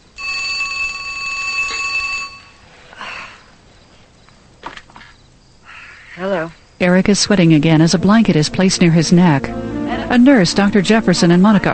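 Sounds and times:
telephone ringing: 0:00.1 - 0:02.6
rustle: 0:02.4 - 0:06.7
speech: 0:06.2 - 0:11.7.

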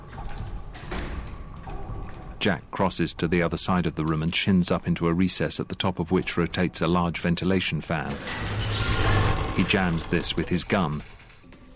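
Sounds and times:
speech: 0:02.4 - 0:08.8, 0:09.6 - 0:11.2
door into a plant room pushed shut with heavy scrape and thud: 0:08.2 - 0:10.2.

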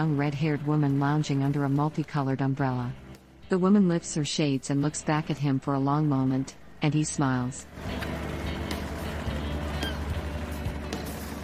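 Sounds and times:
speech: 0:00.0 - 0:08.2
flat-bottomed boat low engine drone: 0:07.6 - 0:11.4.

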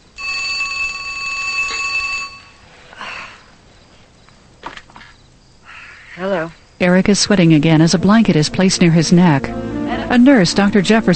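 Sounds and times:
telephone ringing: 0:00.1 - 0:02.6
speech: 0:06.2 - 0:11.1.

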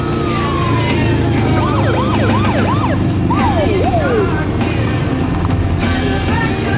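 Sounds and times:
police car siren wailing in yelps: 0:00.0 - 0:05.0
steady rumble of traffic: 0:00.0 - 0:06.7.

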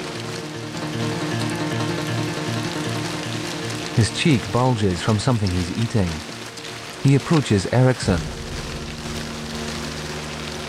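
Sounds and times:
steady rain falling: 0:00.0 - 0:10.6
speech: 0:04.0 - 0:06.3, 0:07.0 - 0:08.4
low droning hum: 0:08.0 - 0:10.6.

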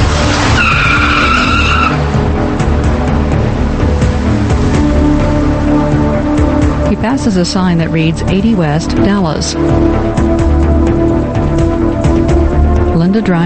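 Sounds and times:
car tires squealing while peeling out: 0:00.0 - 0:04.8
car engine and road noise: 0:00.0 - 0:13.4
speech: 0:07.2 - 0:11.3, 0:13.2 - 0:13.4.

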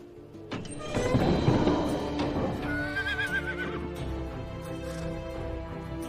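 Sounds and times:
horse shuffling in a stable: 0:00.0 - 0:06.0
horse whinnying loudly in a stable: 0:00.7 - 0:04.0.

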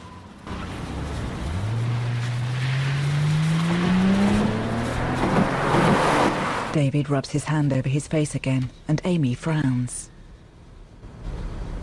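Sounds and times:
car engine accelerating as the car drives back onto the road: 0:00.0 - 0:06.8
speech: 0:06.8 - 0:10.1.

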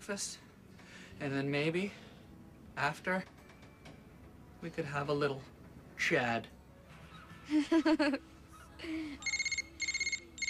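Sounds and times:
speech: 0:00.0 - 0:00.5, 0:01.1 - 0:02.1, 0:02.8 - 0:03.4, 0:04.6 - 0:06.6, 0:07.5 - 0:09.3
cell phone ringing with an electronic ringtone: 0:09.2 - 0:10.4.

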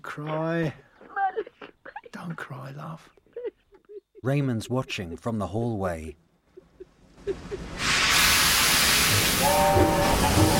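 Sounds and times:
speech: 0:00.1 - 0:01.5, 0:02.2 - 0:03.2, 0:04.2 - 0:06.2, 0:07.2 - 0:08.0, 0:09.4 - 0:10.5
steam train releasing a sustained hiss of steam: 0:07.4 - 0:10.5
steam train whistle tone: 0:09.1 - 0:10.5.

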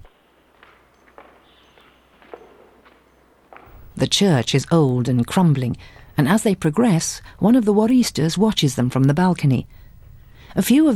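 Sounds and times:
footsteps walking down the nave of an old crumbling church: 0:00.0 - 0:04.0
speech: 0:04.0 - 0:09.8, 0:10.5 - 0:10.9.

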